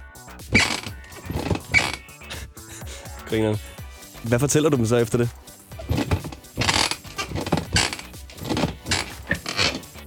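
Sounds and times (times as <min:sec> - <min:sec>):
speech: 0:00.3 - 0:01.0, 0:03.3 - 0:05.4
chair creaking and groaning: 0:00.5 - 0:02.2, 0:05.7 - 0:10.0.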